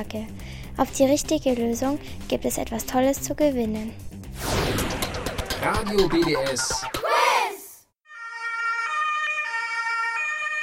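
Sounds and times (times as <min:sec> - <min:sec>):
speech: 0:00.0 - 0:04.8, 0:05.6 - 0:07.1
ambulance siren wailing: 0:08.1 - 0:10.6.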